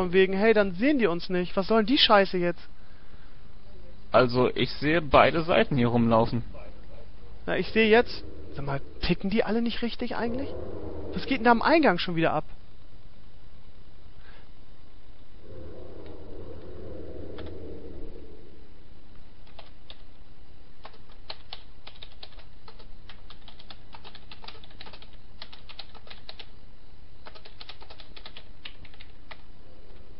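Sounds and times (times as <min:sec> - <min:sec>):
speech: 0:00.0 - 0:02.8, 0:04.1 - 0:06.6, 0:07.4 - 0:12.6
steady hum: 0:00.0 - 0:30.1
typing a chat message on a computer keyboard: 0:19.4 - 0:20.0, 0:20.8 - 0:26.5, 0:27.2 - 0:29.4.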